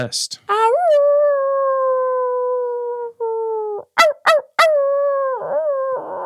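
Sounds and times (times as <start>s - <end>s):
speech: 0.0s - 0.5s
person imitating a dog howling: 0.5s - 6.2s.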